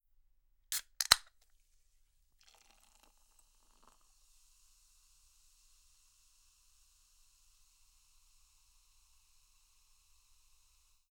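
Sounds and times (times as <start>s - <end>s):
soda pouring from a can: 0.7s - 1.3s, 2.4s - 10.8s
soda can opening: 0.7s - 1.4s.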